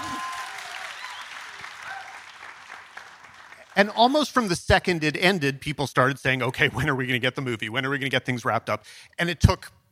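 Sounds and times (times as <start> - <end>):
whoop of cheering: 0.0 - 2.4
small audience clapping: 0.0 - 4.5
speech: 3.8 - 9.8.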